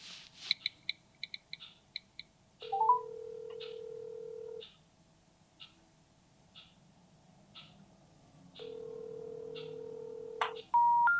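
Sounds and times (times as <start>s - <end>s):
phone keypad beeps dialing a number: 2.7s - 3.7s, 8.6s - 11.1s.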